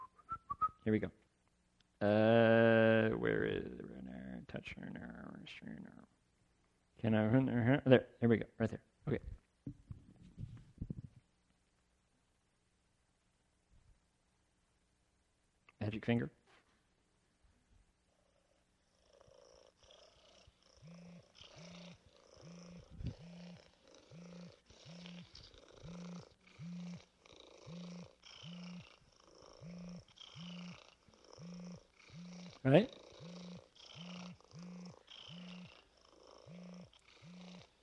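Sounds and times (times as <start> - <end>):
speech: 0.8 - 1.2, 2.0 - 3.9, 4.5 - 6.2, 7.0 - 9.8, 15.9 - 16.4
domestic cat purring: 18.1 - 37.8.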